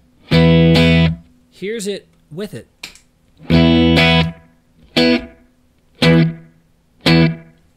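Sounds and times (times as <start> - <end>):
dry electric guitar playing picked notes: 0.2 - 1.2, 3.4 - 5.4, 6.0 - 7.6
speech: 1.6 - 2.8, 3.4 - 3.6.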